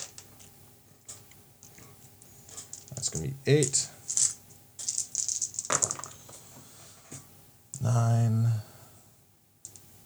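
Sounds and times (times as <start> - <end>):
faint hum: 0.0 - 10.0
six-sided dice rattled in a hand for a damage roll: 2.6 - 6.2
speech: 3.0 - 4.0, 7.9 - 8.4.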